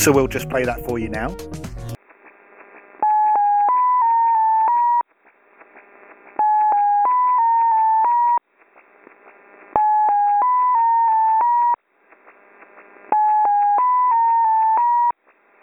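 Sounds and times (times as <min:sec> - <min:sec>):
speech: 0:00.0 - 0:02.0
hiss of shortwave radio static: 0:02.0 - 0:15.6
numbers station sequence of short electronic tones stepping in pitch: 0:03.0 - 0:05.0, 0:06.4 - 0:08.4, 0:09.8 - 0:11.8, 0:13.1 - 0:15.2.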